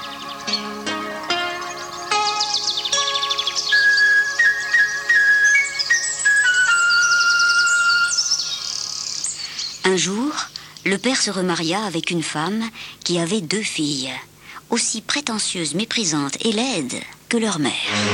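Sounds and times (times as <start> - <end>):
birds singing: 0.0 - 11.7
speech: 10.0 - 18.1.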